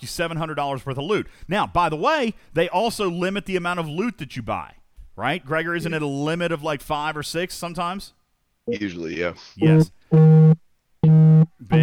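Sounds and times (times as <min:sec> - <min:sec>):
speech: 0:00.0 - 0:10.6, 0:11.5 - 0:11.8
buzzy electronic phone tone beeps: 0:09.6 - 0:11.8.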